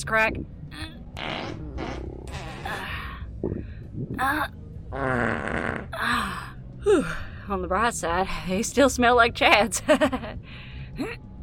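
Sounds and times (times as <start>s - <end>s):
speech: 0.0s - 0.6s, 3.4s - 11.3s
wet sputtering fart noises made with the mouth: 0.8s - 4.3s, 4.9s - 6.0s.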